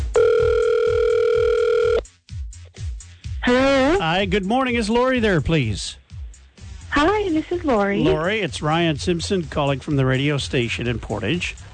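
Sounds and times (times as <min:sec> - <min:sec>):
telephone ringback tone on an outgoing call: 0:00.0 - 0:02.0
speech: 0:04.2 - 0:06.0, 0:07.0 - 0:11.7.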